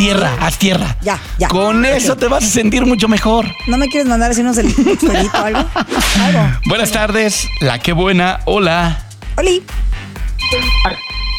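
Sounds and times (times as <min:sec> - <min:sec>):
speech: 0:00.0 - 0:09.9, 0:10.5 - 0:11.0
electronic telephone ringtone signalling an incoming call: 0:02.4 - 0:05.5, 0:06.3 - 0:08.5, 0:10.4 - 0:11.3
laughter: 0:04.6 - 0:06.7.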